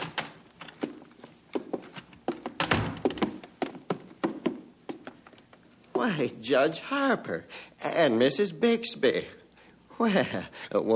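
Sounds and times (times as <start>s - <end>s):
footsteps of two visitors walking in through an open door: 0.0s - 6.2s
feet shuffling: 0.5s - 6.1s
speech: 6.0s - 9.4s, 10.0s - 10.9s.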